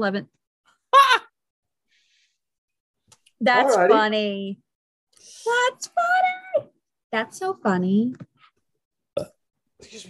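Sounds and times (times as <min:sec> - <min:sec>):
speech: 0:00.0 - 0:00.4, 0:03.4 - 0:04.6, 0:05.2 - 0:08.3, 0:09.2 - 0:10.0
short loud guttural burp: 0:09.1 - 0:09.5.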